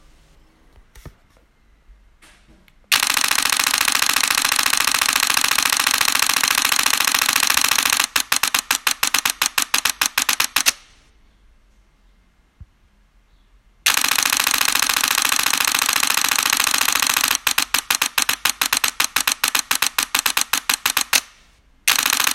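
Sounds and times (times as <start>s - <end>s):
Nikon D5 camera shutter burst at 12 frames per second: 2.9s - 11.0s, 13.9s - 22.3s.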